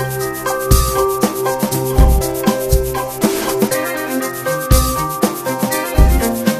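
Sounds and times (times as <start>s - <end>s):
victory alarm sound: 0.2s - 6.4s.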